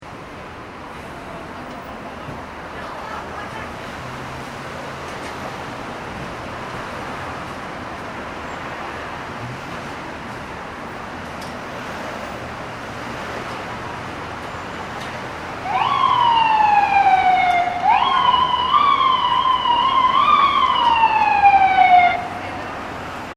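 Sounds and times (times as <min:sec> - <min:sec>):
light traffic on Lower Broadway in New York City: 0:00.0 - 0:23.3
ambulance siren on a city street in the evening: 0:15.4 - 0:22.8.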